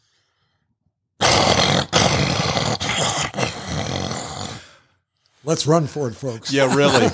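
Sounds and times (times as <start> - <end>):
man imitating a lion roar: 1.2 - 4.7
speech: 5.5 - 7.1
laughter: 6.4 - 7.1.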